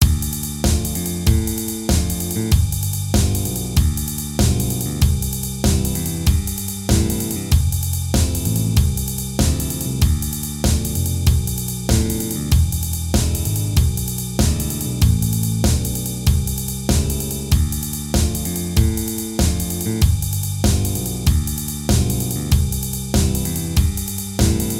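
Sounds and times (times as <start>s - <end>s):
slow rock bass line: 0.0s - 24.7s.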